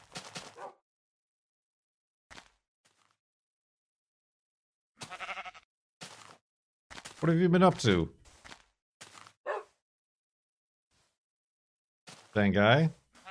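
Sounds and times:
sheep bleating in short quavering bursts: 0:05.0 - 0:05.7
speech: 0:07.2 - 0:08.2, 0:12.4 - 0:13.0.

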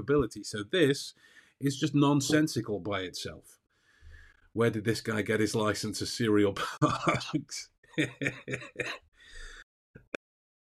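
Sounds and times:
speech: 0:00.0 - 0:03.6, 0:04.5 - 0:09.5
laughter: 0:06.6 - 0:09.0
person coughing harshly: 0:08.1 - 0:09.0.

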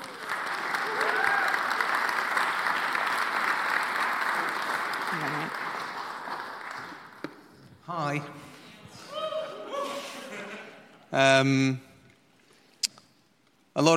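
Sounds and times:
crowd applauding: 0:00.0 - 0:07.5
speech: 0:08.0 - 0:08.4, 0:11.1 - 0:11.9, 0:13.8 - 0:13.9
laughter: 0:09.3 - 0:11.0.

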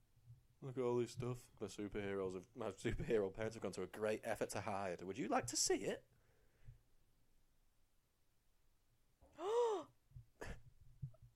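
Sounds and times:
speech: 0:00.6 - 0:06.2
loud voiced gasp: 0:09.3 - 0:10.6.

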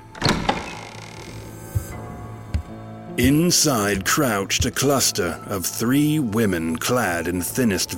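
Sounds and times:
door flung wide open with a rattling burst: 0:00.0 - 0:01.6
dull low thuds: 0:01.7 - 0:05.0
speech: 0:03.2 - 0:07.9.

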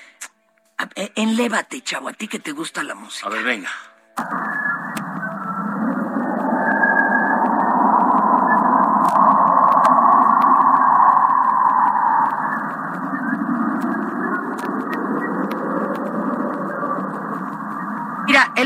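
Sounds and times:
speech: 0:00.8 - 0:04.7
eerie electronic drone from sonified Hubble telescope data: 0:04.2 - 0:18.6
rising whistling tone from sonified Hubble telescope data: 0:04.2 - 0:18.6
faint clicks: 0:04.9 - 0:18.2.

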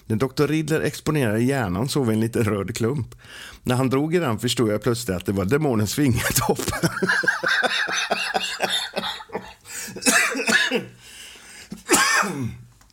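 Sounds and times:
speech: 0:00.1 - 0:09.1
laughter: 0:06.2 - 0:10.1
person with a cold coughing: 0:08.3 - 0:11.0, 0:11.8 - 0:12.7.

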